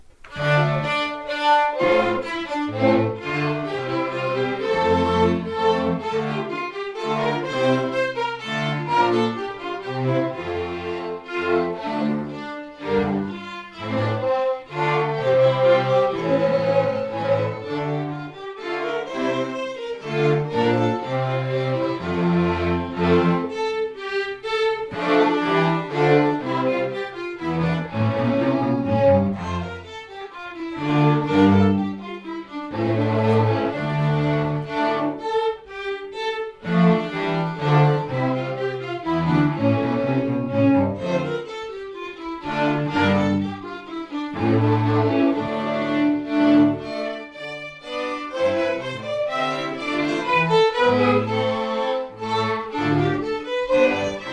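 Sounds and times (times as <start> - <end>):
strings playing a basse danse: 0.0 - 54.3.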